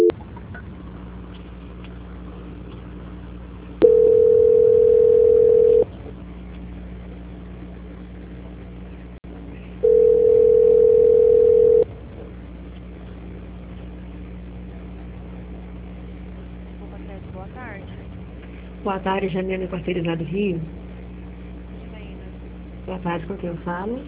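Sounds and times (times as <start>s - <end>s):
quiet low hum on a telephone line: 0.0s - 24.0s
telephone line tones while a call is transferred: 3.8s - 5.9s, 9.8s - 11.9s
speech: 18.9s - 20.8s, 23.0s - 24.0s.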